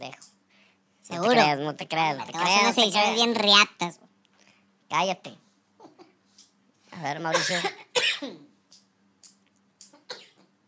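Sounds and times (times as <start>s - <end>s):
faint steady hum: 0.0s - 10.6s
speech: 1.1s - 4.0s, 4.9s - 5.4s, 7.0s - 8.4s
person coughing while smoking a small cigar: 7.3s - 8.5s, 10.0s - 10.5s.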